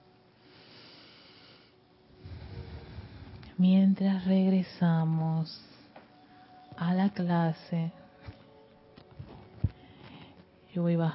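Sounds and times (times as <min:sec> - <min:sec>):
slow heavy deep breathing with a rough airy rasp in a class: 0:00.6 - 0:03.6
speech: 0:03.6 - 0:05.7, 0:06.8 - 0:08.0, 0:10.8 - 0:11.1.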